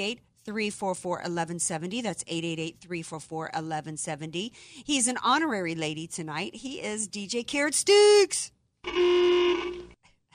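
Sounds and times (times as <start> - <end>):
speech: 0.0 - 9.9
car horn honking: 8.8 - 10.0.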